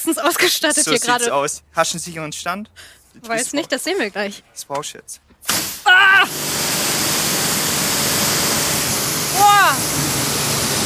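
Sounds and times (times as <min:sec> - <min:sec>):
speech: 0:00.1 - 0:05.6, 0:09.5 - 0:10.2
high-pressure washer water jet spraying: 0:05.5 - 0:10.8.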